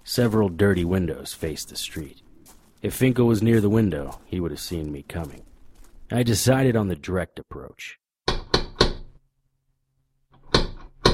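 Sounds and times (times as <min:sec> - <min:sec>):
speech: 0:00.1 - 0:02.2, 0:02.8 - 0:05.5, 0:06.1 - 0:08.0
door latch and frame knocks: 0:08.3 - 0:09.1.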